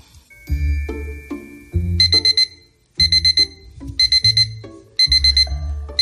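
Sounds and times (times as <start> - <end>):
alarm clock ringing with shrill beeping: 0.3 - 6.0.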